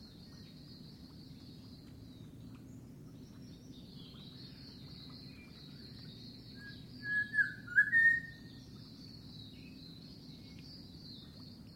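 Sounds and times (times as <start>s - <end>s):
unidentified bird giving clear whistled notes in mangroves: 6.6s - 8.4s.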